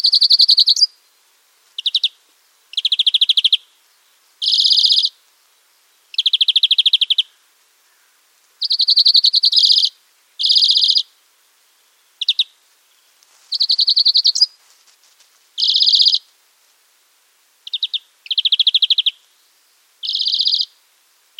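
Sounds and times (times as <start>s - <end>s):
European greenfinch Chloris chloris song: 0.0s - 1.2s, 1.8s - 14.6s, 15.6s - 16.3s, 17.6s - 20.8s.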